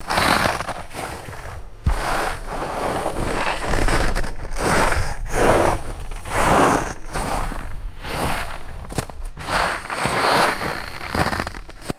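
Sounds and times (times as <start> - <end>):
kayak sliding in snow: 0.0 - 11.9.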